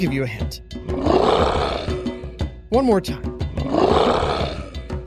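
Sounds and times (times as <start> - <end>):
speech: 0.0 - 1.6, 2.7 - 3.3
big cat roaring: 0.9 - 2.4, 3.6 - 4.9.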